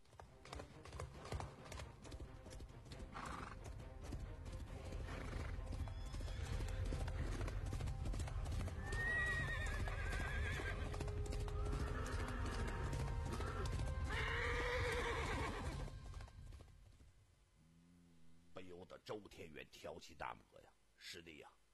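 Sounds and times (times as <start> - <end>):
ridden white horse hooves clip-clopping: 0.0 - 17.2
white horse neighing: 3.2 - 3.6, 5.0 - 5.6, 8.8 - 11.0, 11.7 - 15.8
speech: 19.4 - 21.6.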